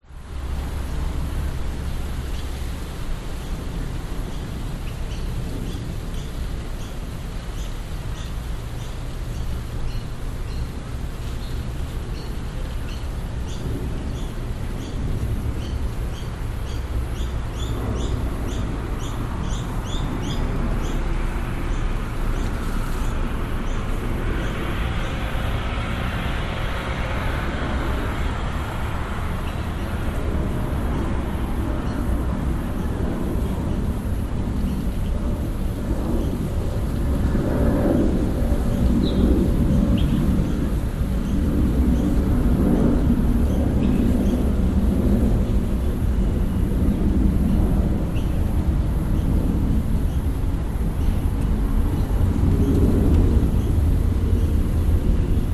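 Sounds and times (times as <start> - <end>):
suburban traffic in Australia: 0.0 - 55.5
birds in a suburban Australian summer: 2.2 - 36.6, 37.4 - 55.5
distant jet taking off near an airport in suburban Australia: 13.3 - 55.5.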